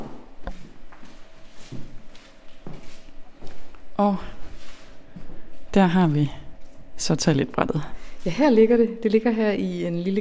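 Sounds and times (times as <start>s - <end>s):
footsteps thudding down a short flight of stairs in a museum: 0.0s - 5.8s
faint hum: 0.0s - 10.1s
speech: 4.0s - 4.3s, 5.8s - 6.4s, 7.0s - 10.1s.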